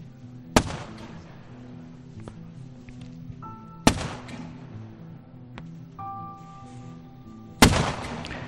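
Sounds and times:
gunshots from military maneuvers in a forest: 0.5s - 1.6s, 3.8s - 4.7s, 7.6s - 8.4s
fainter pops: 0.6s - 1.4s, 3.9s - 4.7s, 7.6s - 8.4s.

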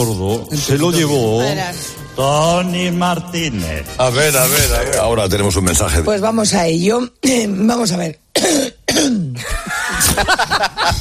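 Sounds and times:
speech: 0.0s - 9.2s, 10.0s - 11.0s
person coughing: 8.4s - 9.8s
laughter: 9.4s - 11.0s.

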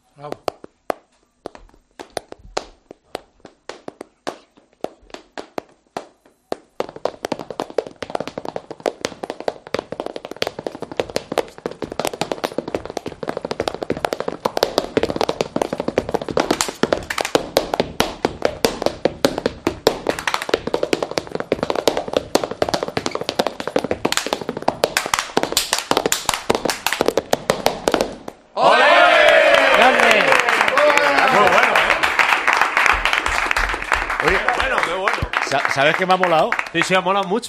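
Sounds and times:
speech: 0.2s - 0.4s, 35.8s - 37.4s
flamenco boot footwork in bulería rhythm with heel and toe strikes: 0.3s - 28.4s, 32.8s - 35.5s
people cheering and shouting: 28.6s - 32.0s.

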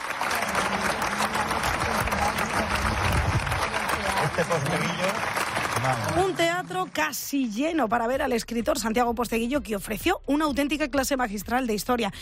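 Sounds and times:
large audience clapping in a Roman theatre: 0.0s - 7.4s
murmuring voices: 0.1s - 6.2s
speech: 4.4s - 12.2s.

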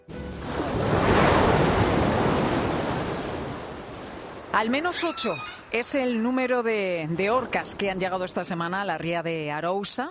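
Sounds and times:
sea surf breaking: 0.3s - 4.6s
speech: 4.6s - 10.0s.

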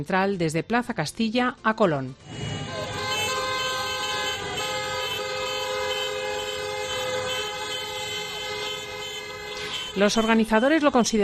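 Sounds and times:
speech: 0.0s - 2.5s, 10.0s - 11.2s
rumbling street background: 0.0s - 11.2s
car horns honking during street car protest: 2.2s - 11.2s.

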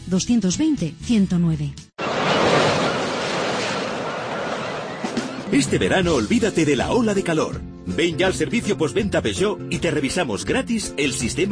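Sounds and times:
speech: 0.1s - 1.8s, 5.5s - 11.5s
surf of breaking sea waves: 2.0s - 5.9s.

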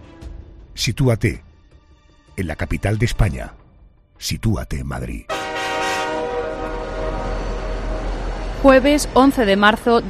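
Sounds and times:
speech: 0.8s - 1.5s, 2.4s - 3.6s, 4.2s - 5.3s, 8.6s - 10.0s
train horn blaring at a commuter rail station in Madrid: 5.3s - 9.2s.

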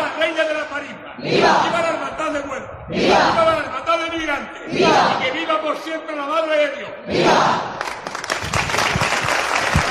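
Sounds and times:
speech: 0.8s - 7.8s
crowd applause at a religious brotherhood procession: 7.8s - 9.8s.

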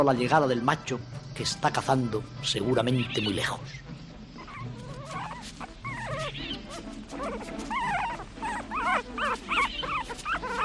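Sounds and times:
speech: 0.0s - 3.9s
wolf cubs whimpering beside she-wolf in juniper woodland: 4.4s - 10.6s.

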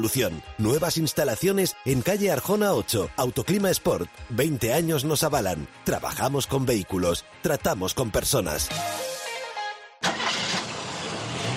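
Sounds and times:
speech: 0.0s - 9.1s
car engine cranking and starting: 10.0s - 11.5s.

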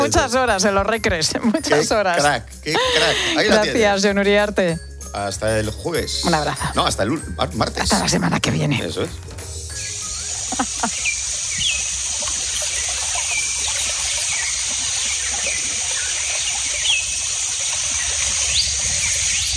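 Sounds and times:
speech: 0.0s - 9.3s
laughter: 2.7s - 3.9s, 10.4s - 11.0s
bird calls and chirps in Brazilian Amazon rainforest: 9.7s - 19.5s
high insect drone in tropical forest: 9.7s - 19.5s.

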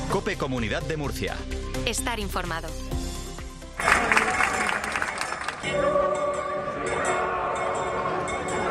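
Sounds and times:
speech: 0.1s - 2.9s, 5.7s - 6.3s
dense crowd applause at a religious procession: 3.8s - 6.0s
crowd of pilgrims singing: 3.8s - 8.6s.

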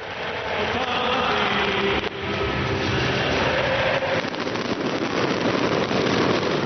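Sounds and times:
faint music: 0.0s - 5.1s
continuous barrage of fireworks crackling and booming: 0.0s - 6.6s.

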